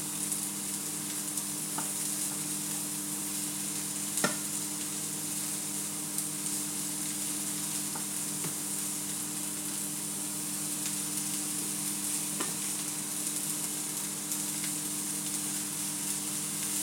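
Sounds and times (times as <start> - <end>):
vegetables stir-fried in a shallow pan sizzling: 0.0 - 16.8.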